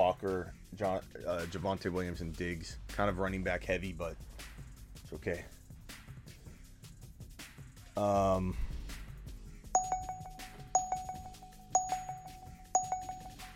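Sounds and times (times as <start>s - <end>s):
speech: 0.2s - 5.6s, 8.0s - 8.7s
draft app electronic notification two-tone chime: 9.8s - 13.5s.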